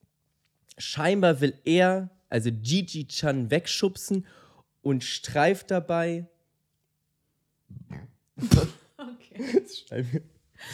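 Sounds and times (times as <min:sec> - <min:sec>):
speech: 0:00.8 - 0:06.3, 0:07.9 - 0:08.8, 0:09.4 - 0:10.7
man burping: 0:07.7 - 0:08.8.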